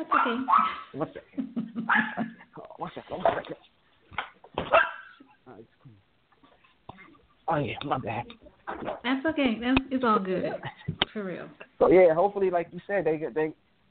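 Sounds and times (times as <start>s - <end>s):
dog barking: 0.0s - 1.0s, 1.9s - 2.4s, 4.6s - 5.2s
speech: 0.0s - 3.7s, 7.5s - 8.4s, 9.0s - 13.6s.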